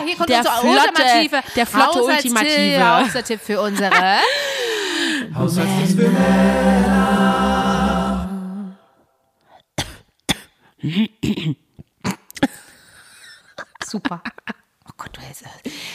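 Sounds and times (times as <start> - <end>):
speech: 0.1 - 7.9, 10.8 - 11.6, 13.9 - 15.9
laughter: 2.8 - 4.5
long strained raspy throat sound: 9.5 - 12.6
sharp coughing bursts: 9.8 - 12.6.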